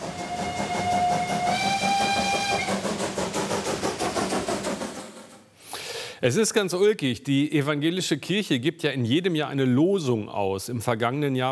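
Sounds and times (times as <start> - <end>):
steam locomotive long shrill whistle: 0.0 - 3.1
steam locomotive engine chuffing: 0.0 - 6.2
speech: 6.2 - 11.4.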